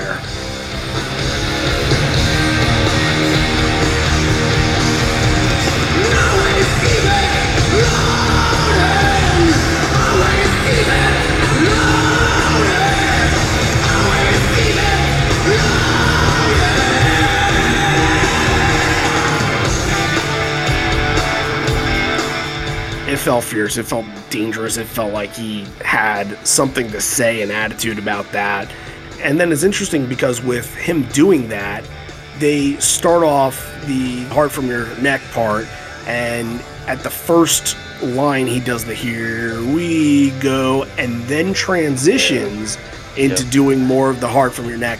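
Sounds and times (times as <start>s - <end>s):
distorted guitars: 0.0s - 44.9s
loud dense live band music with distorted guitars: 0.0s - 44.9s
rock singer screaming and yelling: 1.3s - 22.2s
speech: 23.4s - 44.9s.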